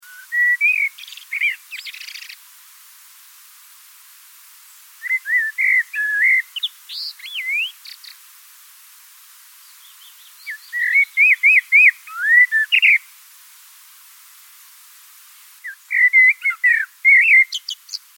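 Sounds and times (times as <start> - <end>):
blackbird: 0.0 - 2.4, 5.0 - 8.2, 9.7 - 13.0, 15.6 - 18.1.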